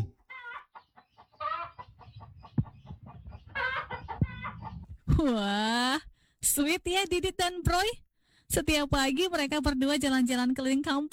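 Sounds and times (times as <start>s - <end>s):
chicken clucking: 0.0s - 5.0s
speech: 5.2s - 11.1s.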